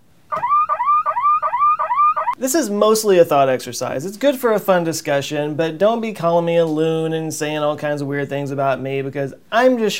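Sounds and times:
loud electronic woo-woo alarm sound effect: 0:00.3 - 0:02.4
speech: 0:02.4 - 0:09.9.

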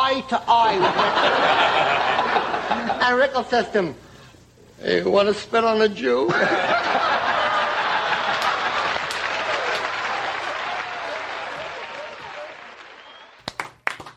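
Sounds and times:
speech: 0:00.1 - 0:04.0, 0:04.8 - 0:07.3
studio audience laughter: 0:00.7 - 0:03.0, 0:06.3 - 0:12.5
studio audience applause: 0:07.3 - 0:14.1
isolated claps: 0:08.3 - 0:14.1.

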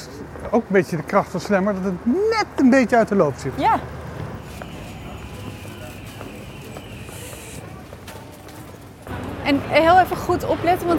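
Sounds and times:
outdoor city traffic: 0:00.0 - 0:10.9
speech: 0:00.4 - 0:04.0, 0:09.5 - 0:10.9
footsteps walking along a city street: 0:03.6 - 0:10.9.

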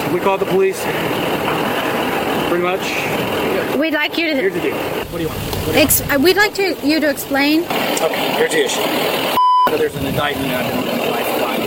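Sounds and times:
speech: 0:00.1 - 0:01.8, 0:02.5 - 0:11.3
electronic warning beep from a car left running: 0:09.4 - 0:09.8.

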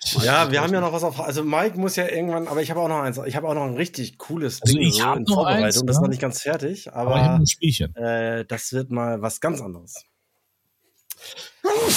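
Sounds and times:
speech: 0:00.1 - 0:10.1, 0:11.2 - 0:11.9
sharp intake of breath before a sneeze: 0:11.2 - 0:11.9
loud sneeze: 0:11.6 - 0:11.9.

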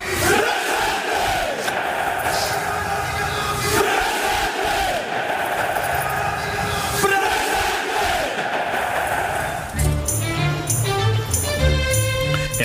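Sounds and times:
large group of young people chanting and shouting at a rally: 0:00.0 - 0:09.8
music with steady tones: 0:09.8 - 0:12.6.

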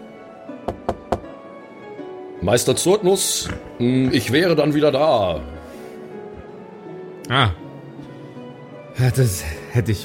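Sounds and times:
firm knocks on a wooden door: 0:00.6 - 0:01.4
speech: 0:02.4 - 0:05.6, 0:07.3 - 0:07.6, 0:09.0 - 0:10.0.

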